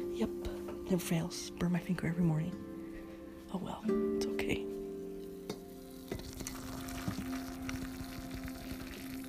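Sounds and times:
speech: 0.2s - 2.7s, 3.5s - 4.8s
hot water pouring from a teapot into a cup: 6.0s - 9.2s.

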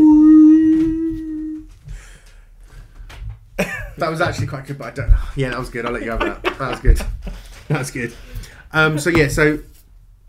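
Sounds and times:
person imitating a whale call: 0.0s - 1.7s
speech: 4.0s - 9.7s
laughter: 5.6s - 8.2s.

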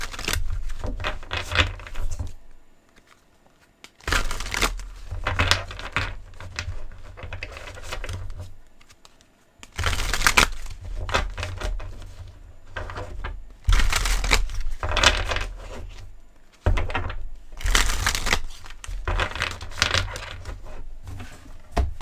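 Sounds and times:
tarot cards being handled and shuffled: 0.0s - 22.0s.

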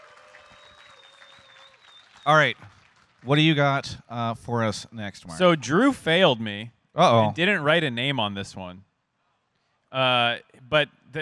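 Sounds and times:
audience applause: 0.0s - 3.7s
speech: 2.2s - 8.9s, 9.9s - 11.2s.

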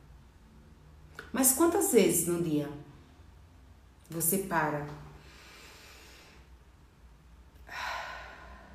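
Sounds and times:
speech: 1.3s - 2.9s, 4.1s - 5.0s
slow deep breath in and out: 5.2s - 6.7s, 7.6s - 8.7s.

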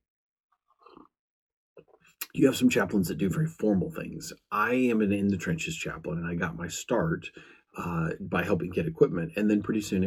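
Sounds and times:
slurping and swallowing while sipping coffee: 0.7s - 1.1s
speech: 2.3s - 10.0s.

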